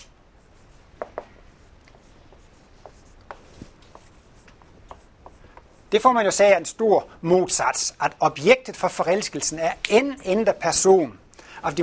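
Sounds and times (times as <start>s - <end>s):
soft hiss: 0.0s - 11.8s
writing on a board during a talk: 0.4s - 5.9s
speech: 5.9s - 11.8s.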